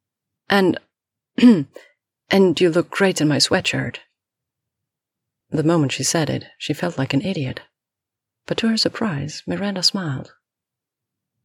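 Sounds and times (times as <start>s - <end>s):
speech: 0.5s - 0.8s, 1.4s - 4.1s, 5.5s - 7.7s, 8.5s - 10.4s
woman clearing her throat in rasping bursts: 1.4s - 1.9s.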